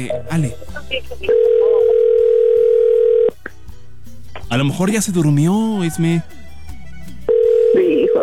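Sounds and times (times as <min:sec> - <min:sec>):
speech: 0:00.0 - 0:01.8, 0:04.5 - 0:06.4
phone ringback tone after dialing: 0:01.3 - 0:03.4, 0:07.3 - 0:08.2.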